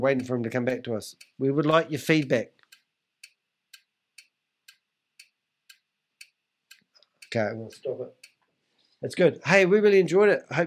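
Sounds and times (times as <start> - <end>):
speech: 0.0 - 2.6, 7.3 - 8.2, 9.0 - 10.6
clock ticking: 0.0 - 8.5.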